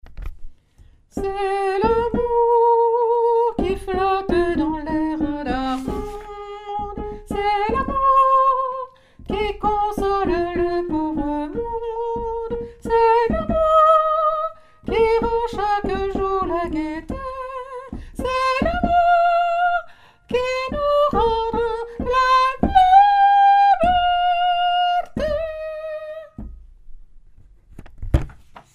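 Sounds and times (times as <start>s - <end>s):
soprano singing: 1.1s - 26.5s.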